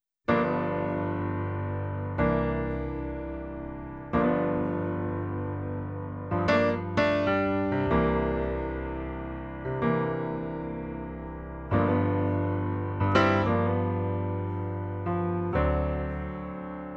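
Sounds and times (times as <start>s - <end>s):
piano through a compressor: 0.2s - 16.9s.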